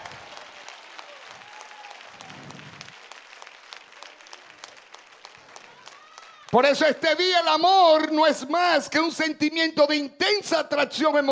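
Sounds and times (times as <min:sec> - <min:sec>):
church audience applauding loudly: 0:00.0 - 0:07.3
speech: 0:06.5 - 0:11.2.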